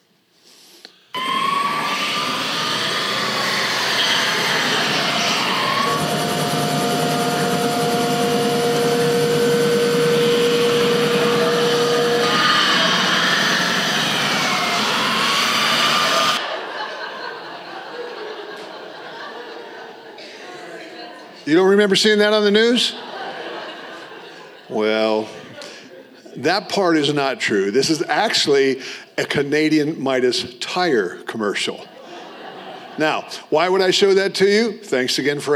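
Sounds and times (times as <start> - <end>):
car engines revving in a police chase: 1.2 - 16.4
wailing siren-like tones: 1.2 - 16.4
laughter: 2.1 - 6.2, 10.4 - 21.6, 22.7 - 26.5, 31.8 - 33.5
speech: 21.8 - 23.0, 26.5 - 31.9, 33.0 - 35.5.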